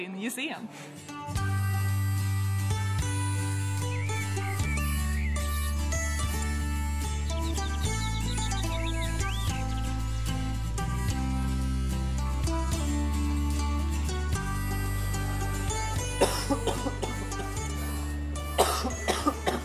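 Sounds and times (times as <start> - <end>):
speech: 0.0 - 1.5, 16.2 - 17.1
music with a low sustained bass: 1.2 - 19.6
person coughing: 16.2 - 17.4, 18.6 - 19.6.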